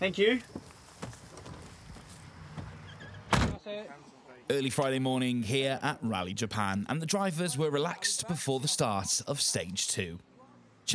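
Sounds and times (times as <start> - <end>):
speech: 0.0 - 0.6, 3.7 - 10.3
door slamming: 2.5 - 3.6.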